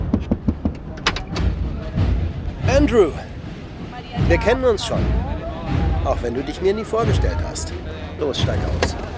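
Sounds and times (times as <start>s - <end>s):
pickup truck door clunking and rattling open: 0.2s - 1.5s
speech: 2.8s - 3.3s, 4.2s - 9.1s.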